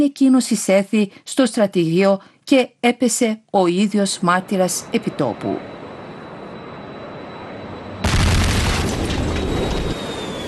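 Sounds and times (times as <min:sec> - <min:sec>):
speech: 0:00.0 - 0:05.8
powerful explosion boom: 0:08.0 - 0:10.0.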